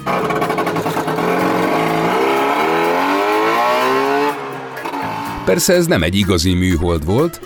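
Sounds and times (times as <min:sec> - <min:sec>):
Trabant car engine revving: 0:00.0 - 0:05.8
speech: 0:05.5 - 0:07.4.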